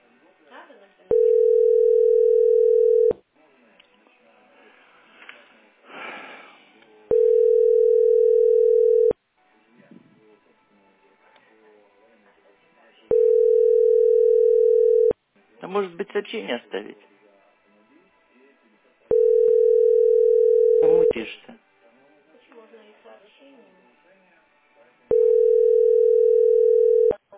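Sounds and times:
ringback tone of an outgoing telephone call: 1.1 - 3.1, 7.1 - 9.2, 13.1 - 15.2, 19.1 - 21.1, 25.1 - 27.2
person sniffing: 5.2 - 6.7
speech: 16.0 - 17.2.

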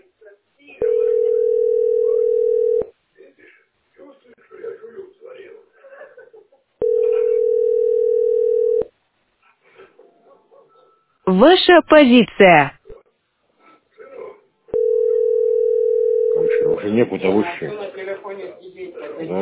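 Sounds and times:
loud steady telephone dial tone: 0.8 - 2.9, 6.8 - 8.9, 14.8 - 16.7
speech: 11.4 - 12.8, 16.9 - 18.5, 19.2 - 19.3.

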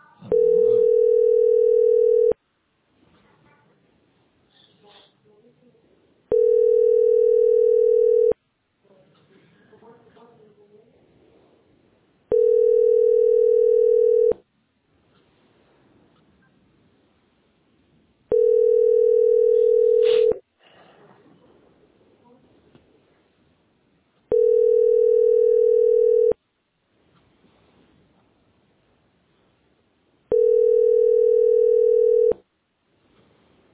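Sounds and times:
telephone line tone while placing a call: 0.3 - 2.4, 6.3 - 8.4, 12.3 - 14.4, 18.3 - 20.4, 24.3 - 26.4, 30.3 - 32.4.

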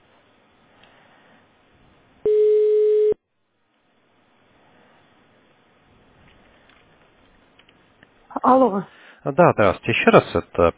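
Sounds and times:
telephone tone of a support-line callback connecting: 2.2 - 3.2
speech: 8.5 - 10.7.

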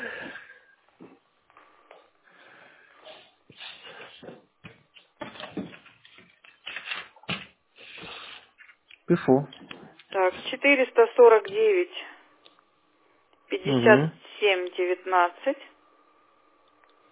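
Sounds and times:
objects rustling and clattering while someone rummages for a pen over a telephone line: 3.5 - 9.0
speech: 9.1 - 9.6, 10.2 - 12.1, 13.6 - 15.7.

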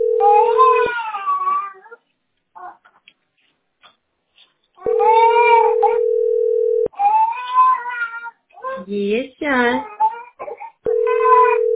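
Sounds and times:
high wailing infant cries: 0.2 - 2.8, 4.8 - 6.1, 6.9 - 8.9, 9.8 - 11.7.

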